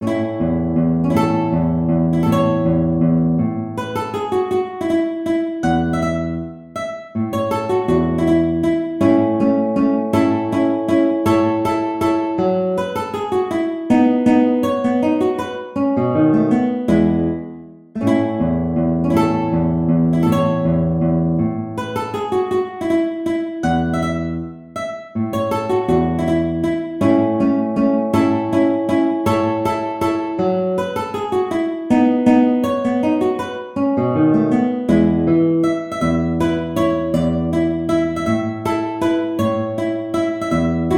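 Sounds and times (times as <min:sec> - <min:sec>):
waltz on guitar: 0:00.0 - 0:40.9.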